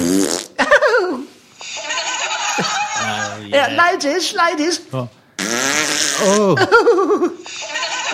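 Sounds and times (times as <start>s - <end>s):
fart sound effect: 0.0s - 0.6s, 5.4s - 6.5s
laughter: 0.6s - 3.1s, 6.4s - 8.1s
speech: 3.6s - 8.1s.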